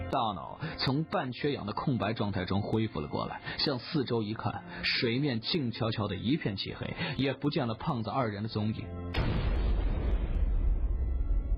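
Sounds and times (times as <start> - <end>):
speech: 0.1 - 9.2
blast charge exploding inside a cave: 9.1 - 11.5.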